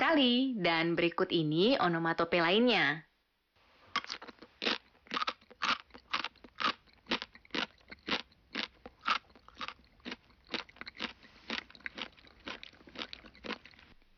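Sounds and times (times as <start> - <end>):
speech: 0.1 - 3.1, 4.1 - 4.3
crunchy chewing of something hard: 3.9 - 14.1.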